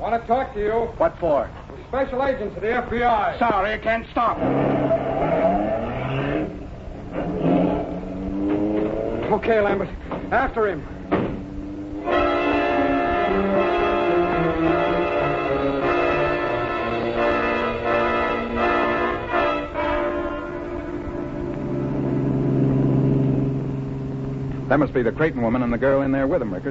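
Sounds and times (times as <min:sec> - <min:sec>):
speech: 0:00.0 - 0:05.4, 0:09.3 - 0:11.0, 0:24.7 - 0:26.6
blaring horn-like tones: 0:04.2 - 0:09.4, 0:10.8 - 0:26.1
car engine driving hard in a chase: 0:04.2 - 0:26.6.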